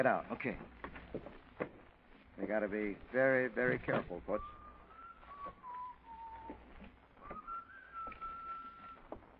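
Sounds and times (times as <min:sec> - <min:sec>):
speech: 0:00.0 - 0:01.7, 0:02.4 - 0:04.6
low hum: 0:00.0 - 0:09.3
man whistling a simple tune: 0:04.3 - 0:09.1.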